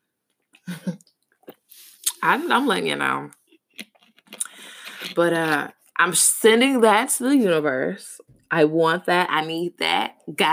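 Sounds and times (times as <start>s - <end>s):
speech: 2.2s - 3.4s, 5.2s - 10.5s
soft mouth and swallowing noises: 3.6s - 5.2s
person sipping water: 3.7s - 5.2s.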